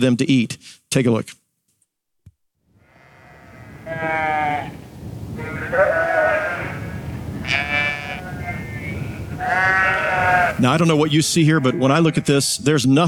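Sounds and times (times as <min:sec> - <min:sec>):
speech: 0:00.0 - 0:01.4, 0:10.6 - 0:13.0
herd of sheep bleating: 0:02.8 - 0:04.8, 0:05.4 - 0:12.6
low rumble of sheep hooves and movement: 0:04.7 - 0:12.8.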